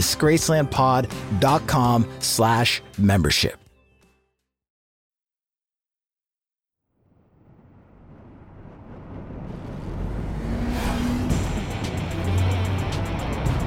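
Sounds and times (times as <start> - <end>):
speech: 0.0 - 3.6
wind noise: 7.4 - 11.8
1975 Corvette Stingray engine and road roar driving fast on the Pacific Coast Highway: 7.5 - 13.6.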